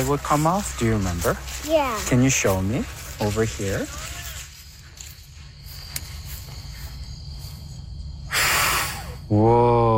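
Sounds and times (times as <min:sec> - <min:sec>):
speech: 0:00.0 - 0:04.2, 0:09.3 - 0:09.9
quiet hum: 0:00.0 - 0:09.9
child blowing a forceful breath of air: 0:08.3 - 0:09.2.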